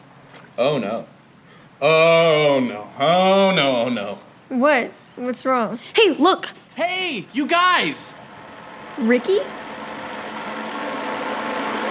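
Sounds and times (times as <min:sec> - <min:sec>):
speech: 0:00.6 - 0:01.2, 0:01.8 - 0:08.2, 0:09.0 - 0:09.6
electric scooter motor humming: 0:03.0 - 0:11.8.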